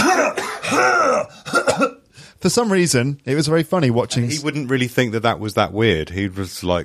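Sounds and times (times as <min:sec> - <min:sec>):
voice imitating a man's hacking coughing fit: 0:00.0 - 0:02.0
speech: 0:02.4 - 0:06.8.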